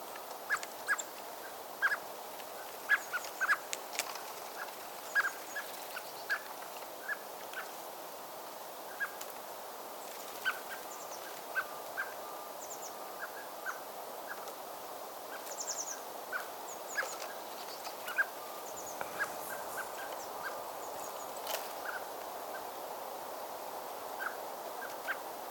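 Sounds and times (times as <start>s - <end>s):
steady background hiss: 0.0s - 25.4s
common blackbird Turdus merula chuck calls: 15.7s - 22.0s.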